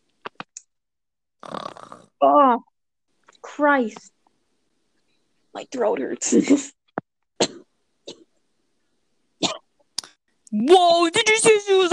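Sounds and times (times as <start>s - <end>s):
person snorting: 1.4s - 2.2s
person imitating a snore: 1.4s - 2.5s
speech: 2.2s - 2.7s, 3.6s - 4.2s, 5.6s - 6.8s, 10.5s - 11.9s.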